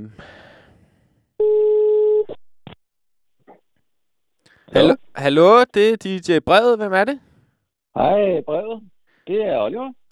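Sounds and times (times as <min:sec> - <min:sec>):
speech: 0:00.0 - 0:00.4, 0:04.7 - 0:07.3, 0:08.0 - 0:10.0
telephone ringing on an outgoing call: 0:01.4 - 0:02.3.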